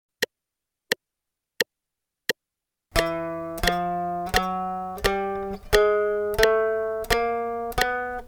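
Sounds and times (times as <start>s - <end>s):
guitar playing quarter notes: 3.0s - 8.2s.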